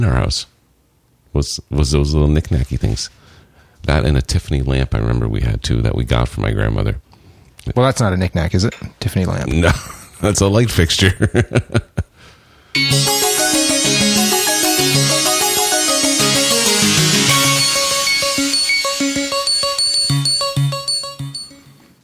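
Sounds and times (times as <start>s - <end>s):
speech: 0.0s - 0.6s, 1.3s - 3.2s, 3.8s - 7.0s, 7.6s - 12.1s, 12.8s - 13.1s
melodic phone ringtone of bell-like tones: 12.8s - 21.8s.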